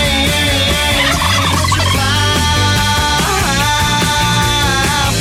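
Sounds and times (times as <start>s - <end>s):
laughter: 0.1s - 5.1s
turkeys gobbling: 0.8s - 2.4s.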